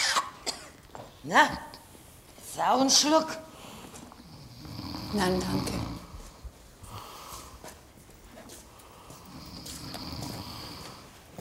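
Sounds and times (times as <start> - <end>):
speech: 1.2 - 1.7, 2.6 - 3.5, 5.1 - 5.8
person snoring loudly with rasping breaths: 4.2 - 6.3, 9.1 - 11.1.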